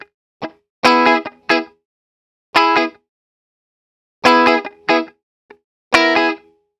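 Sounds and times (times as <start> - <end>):
pop rock electric guitar rhythm in C sharp minor: 0.0 - 1.8, 2.6 - 3.0, 4.2 - 5.2, 5.9 - 6.6.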